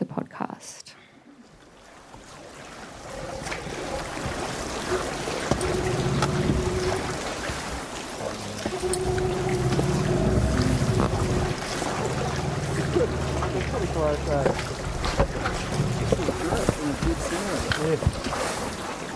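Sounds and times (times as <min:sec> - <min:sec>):
water lapping and sloshing in a hollow cave inside an iceberg: 0:01.0 - 0:19.1
steady low hum: 0:08.4 - 0:16.9.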